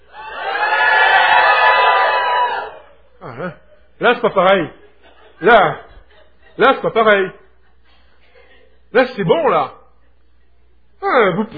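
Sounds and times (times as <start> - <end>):
large crowd shouting and cheering: 0.0 - 3.1
laughter: 2.4 - 9.0
speech: 4.0 - 4.8, 5.4 - 5.8, 6.6 - 7.4, 8.9 - 9.8, 11.0 - 11.5.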